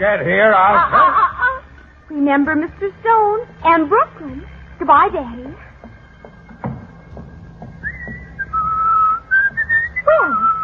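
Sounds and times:
speech: 0:00.0 - 0:01.1, 0:02.1 - 0:05.7, 0:10.1 - 0:10.5
laughter: 0:00.0 - 0:01.9
room noise: 0:00.0 - 0:10.6
faint footsteps: 0:02.8 - 0:10.6
person whistling a short tune loudly: 0:07.8 - 0:10.6.

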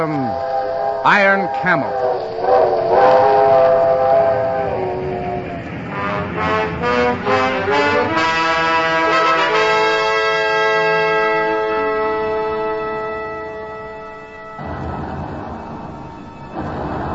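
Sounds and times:
speech: 0:00.0 - 0:03.2
ammunition train rolling past: 0:00.0 - 0:17.1.

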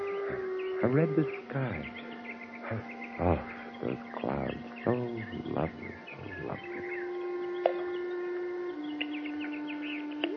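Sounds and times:
small birds chirping at a fish pond: 0:00.0 - 0:10.3
speech: 0:00.8 - 0:02.0, 0:02.7 - 0:06.8.

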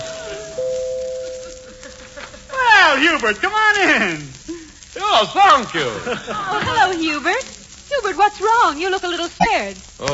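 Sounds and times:
bell ringing: 0:00.0 - 0:02.5
laughter: 0:00.0 - 0:07.5
speech: 0:02.9 - 0:04.4, 0:05.0 - 0:10.1.

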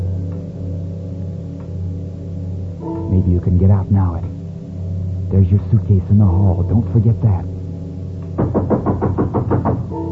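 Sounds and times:
speech: 0:03.1 - 0:04.3, 0:05.3 - 0:07.5
firm knocking on a door: 0:08.4 - 0:09.9.

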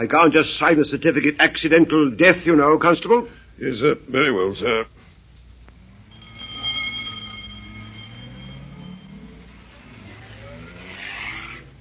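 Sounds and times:
speech: 0:00.0 - 0:05.0
ambulance engine revving and pulling away: 0:07.6 - 0:11.7.

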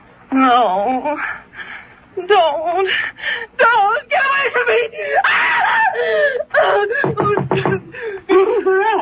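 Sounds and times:
speech: 0:00.3 - 0:09.0
woman gasping and sobbing: 0:00.6 - 0:09.0
woman screaming and wailing in her sleep: 0:04.2 - 0:08.1.

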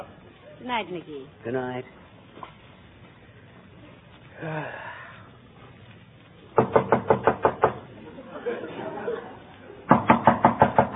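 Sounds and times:
speech: 0:00.6 - 0:02.5, 0:04.4 - 0:05.0
sharp rapid knocking on a door: 0:06.6 - 0:07.8, 0:09.9 - 0:10.9
laughter: 0:07.8 - 0:09.9.

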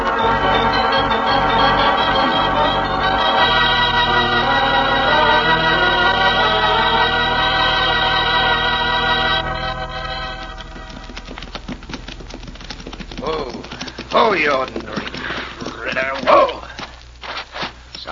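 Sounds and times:
tonal wail: 0:00.0 - 0:11.8
horse hooves clip-clopping: 0:10.0 - 0:18.1
people shouting: 0:15.9 - 0:16.7.

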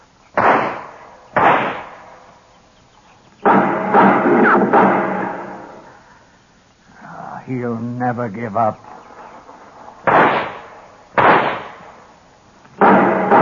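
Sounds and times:
gunshots during an armed standoff: 0:00.4 - 0:02.2, 0:03.4 - 0:05.9, 0:10.0 - 0:12.1, 0:12.8 - 0:13.4
speech: 0:07.5 - 0:08.9.

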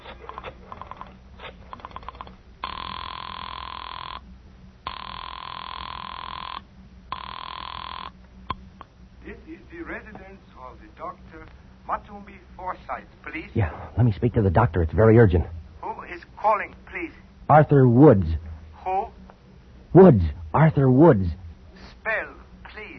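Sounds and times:
telephone ringing after a number is dialed: 0:01.7 - 0:04.2, 0:04.8 - 0:08.2
speech: 0:10.7 - 0:15.6, 0:16.4 - 0:18.4, 0:19.9 - 0:21.4.

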